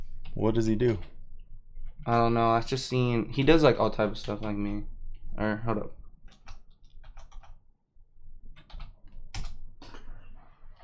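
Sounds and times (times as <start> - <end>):
typing on a computer keyboard to enter a name into a search bar: 0.2 - 1.2, 4.0 - 4.8, 6.2 - 7.6, 8.5 - 10.2
speech: 0.4 - 1.2, 2.0 - 6.0.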